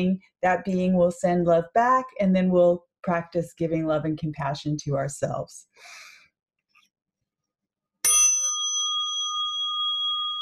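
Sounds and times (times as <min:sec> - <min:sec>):
speech: 0:00.0 - 0:06.1
meditation chime ringing: 0:08.1 - 0:10.4.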